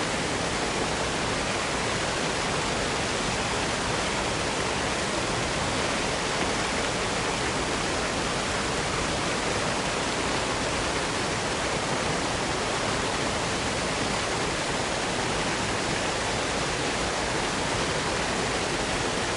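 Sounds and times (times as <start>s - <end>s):
mountain waterfall pouring down rocky terrain in a forest: 0.0s - 19.3s.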